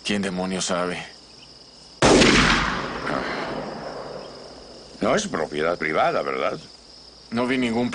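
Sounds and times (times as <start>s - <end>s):
speech: 0.1s - 1.2s, 5.0s - 7.9s
gunshot blast in a film scene: 2.0s - 4.3s.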